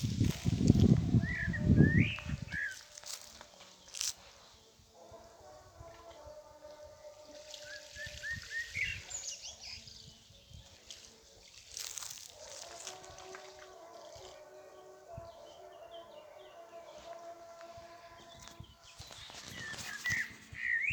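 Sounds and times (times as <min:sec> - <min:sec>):
hunting horns playing: 0:00.2 - 0:07.9, 0:12.3 - 0:20.7.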